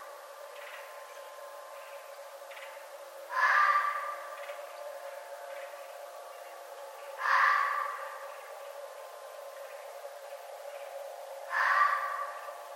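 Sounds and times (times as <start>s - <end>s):
red fox screaming: 3.3s - 4.2s, 7.2s - 8.2s, 11.5s - 12.4s.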